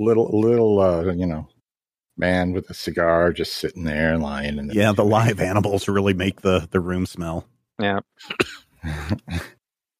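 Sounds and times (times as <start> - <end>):
speech: 0.0 - 1.6, 2.2 - 9.5
person coughing: 8.2 - 9.5.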